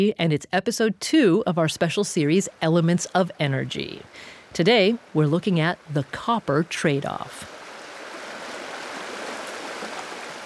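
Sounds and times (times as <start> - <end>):
speech: 0.0 - 7.5
river water flowing: 2.2 - 10.4.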